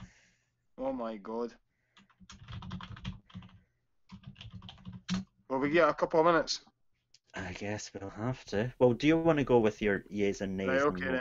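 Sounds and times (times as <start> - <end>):
speech: 0.8 - 2.5, 5.5 - 6.7, 7.4 - 11.1
tapping of someone typing a message on a phone: 1.9 - 5.4.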